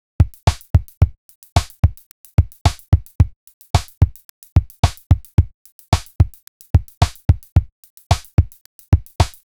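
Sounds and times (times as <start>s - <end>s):
kickless drum loop with accent: 0.2s - 9.5s.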